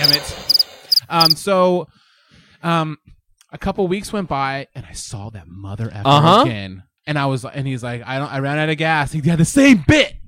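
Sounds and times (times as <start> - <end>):
person imitating crickets: 0.0 - 1.4
speech: 1.1 - 2.0, 2.6 - 10.2.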